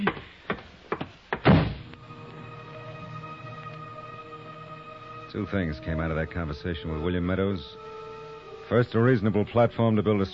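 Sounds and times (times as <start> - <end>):
door shutting with a heavy thud: 1.4 - 1.9
speech: 5.3 - 7.9, 8.7 - 10.3.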